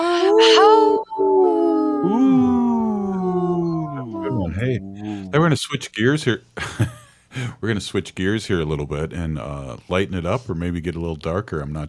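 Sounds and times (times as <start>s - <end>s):
wolves howling together: 0.0s - 5.4s
speech: 5.4s - 11.8s.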